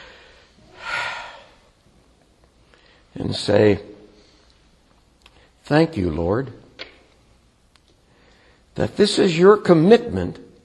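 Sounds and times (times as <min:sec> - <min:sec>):
deep breath: 0:00.0 - 0:01.7, 0:02.7 - 0:03.1, 0:08.0 - 0:08.7
speech: 0:03.2 - 0:03.9, 0:05.7 - 0:06.6, 0:08.8 - 0:10.4.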